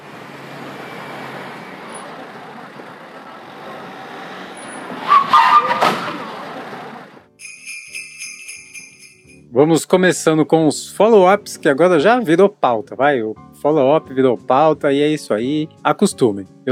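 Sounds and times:
car driving: 0.0 - 7.3
tire squeal from sharp braking: 0.6 - 7.2
car crash: 1.6 - 7.2
short bright chiming tone: 7.4 - 9.5
speech: 9.6 - 16.6.

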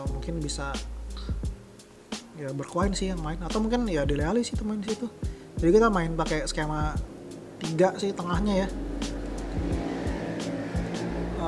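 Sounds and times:
speech: 0.2 - 1.4, 2.4 - 8.9
continuous rumbling drone: 5.6 - 11.4
several motorcycles with loud exhausts roaring and revving past: 6.8 - 11.4.

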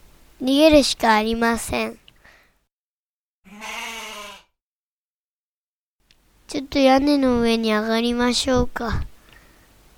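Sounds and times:
speech: 0.4 - 2.0, 6.6 - 9.1
video game goat bleating: 3.5 - 4.5.

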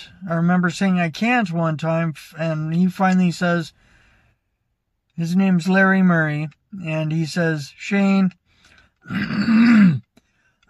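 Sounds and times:
speech: 0.0 - 3.8, 5.2 - 8.4, 9.0 - 10.0
man clearing his throat: 9.1 - 10.1.

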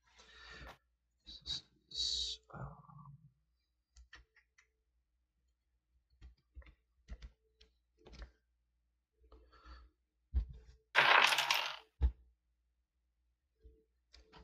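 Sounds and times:
resin dice being dropped and rolling: 11.0 - 11.9.

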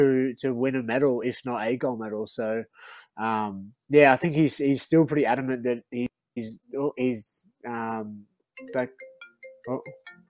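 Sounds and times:
speech: 0.0 - 10.2
mobile phone ringtone: 8.6 - 10.2.

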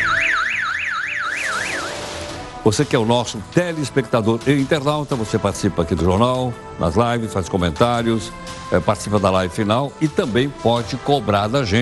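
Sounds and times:
anti-theft alarm on supermarket packaging wailing in Recife: 0.0 - 2.3
speech: 2.6 - 11.8.

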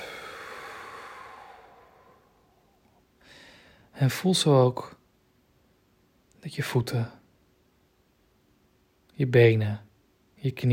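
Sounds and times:
long breathy exhale during a guided meditation: 0.0 - 3.9
speech: 4.0 - 5.0, 6.4 - 7.2, 9.2 - 10.7.

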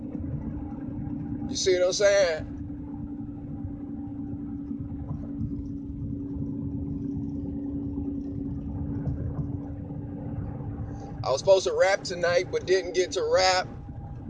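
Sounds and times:
car with a wobbly tire engine and road drone: 0.0 - 14.2
speech: 1.5 - 2.5, 11.3 - 13.7.

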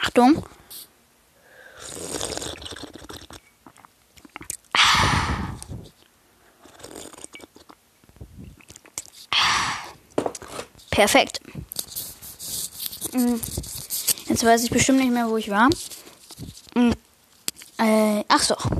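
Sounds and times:
speech: 0.0 - 0.9, 11.0 - 11.4, 13.2 - 13.6, 14.3 - 15.9, 16.8 - 17.0, 17.8 - 18.7
faint mouth sounds: 1.5 - 10.0, 11.2 - 14.6, 15.7 - 17.7
person slurping tea: 1.6 - 6.0, 6.6 - 7.8, 8.6 - 10.0.

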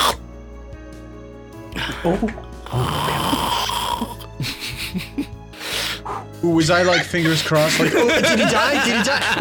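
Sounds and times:
sleeping man snoring heavily with rasping rattling breaths: 0.0 - 0.2, 2.6 - 4.4
speech: 1.8 - 5.1, 6.4 - 9.3
laughter: 4.4 - 5.3, 6.6 - 9.3.

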